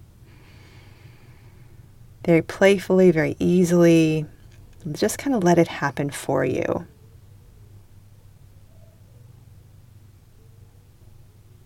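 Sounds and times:
slow deep belly breathing: 0.2s - 1.9s
speech: 2.2s - 7.0s.

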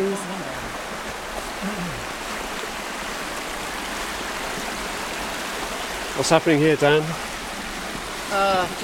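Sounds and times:
stream rushing into a cave entrance: 0.0s - 8.8s
speech: 6.2s - 7.3s, 8.3s - 8.8s.

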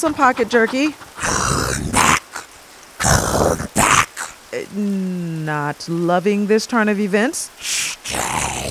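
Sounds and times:
speech: 0.0s - 1.6s, 4.7s - 8.6s
wolf growling: 0.0s - 4.5s, 7.6s - 8.6s
low voiced sound: 1.2s - 5.5s, 7.6s - 8.6s.

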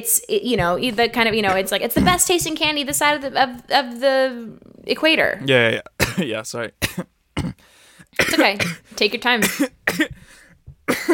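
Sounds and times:
speech: 0.0s - 11.1s
person coughing: 6.0s - 7.6s, 8.2s - 8.8s, 9.4s - 10.3s, 10.9s - 11.1s.

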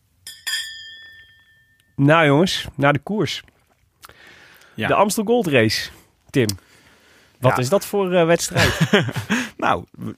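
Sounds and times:
glasses clinking in a toast: 0.2s - 2.0s
speech: 2.0s - 3.5s, 4.8s - 6.7s, 7.4s - 10.1s
laughter: 8.5s - 9.6s.

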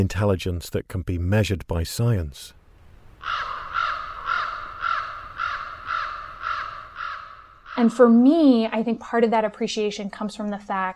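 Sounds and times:
speech: 0.0s - 2.6s, 3.2s - 3.6s, 7.8s - 10.9s
crow cawing: 3.2s - 8.2s.

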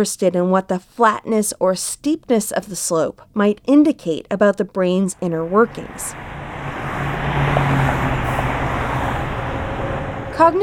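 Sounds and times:
speech: 0.0s - 6.8s, 10.4s - 10.6s
car tires humming on pavement: 5.2s - 10.6s
highway traffic roar: 5.2s - 10.6s.

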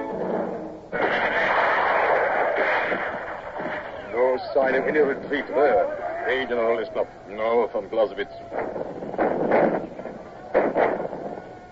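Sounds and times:
steady noisy background: 0.0s - 11.6s
cannon fire: 0.2s - 5.8s, 8.4s - 11.6s
speech: 4.4s - 9.9s.

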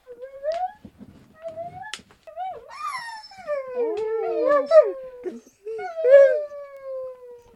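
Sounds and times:
dog howling: 1.4s - 7.5s.

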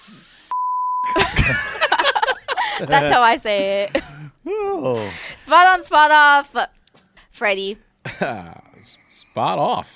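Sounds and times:
high-pitched censor bleep over a swear word: 0.5s - 1.2s
laughter: 1.1s - 5.3s
loud voice talking: 2.8s - 3.2s
speech: 2.8s - 4.1s, 4.8s - 6.8s, 7.4s - 9.9s.

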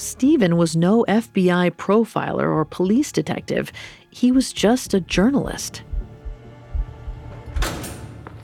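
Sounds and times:
speech: 0.0s - 5.9s
heavy secure prison door swinging open: 7.3s - 8.4s.

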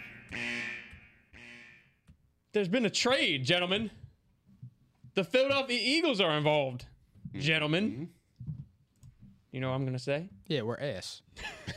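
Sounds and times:
loud steady electronic alarm blaring: 0.0s - 2.0s
speech: 2.6s - 4.0s, 5.2s - 8.2s, 9.5s - 11.7s.

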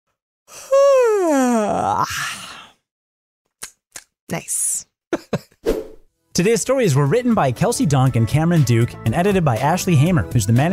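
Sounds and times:
person yawning: 0.5s - 2.8s
speech: 1.9s - 2.6s, 4.3s - 5.5s, 6.4s - 10.7s.

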